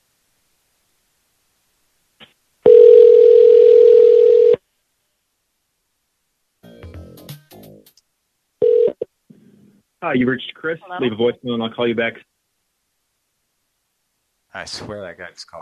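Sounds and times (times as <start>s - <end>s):
telephone dial tone: 2.7s - 4.6s, 8.6s - 9.0s
speech: 10.0s - 12.3s, 14.6s - 15.6s.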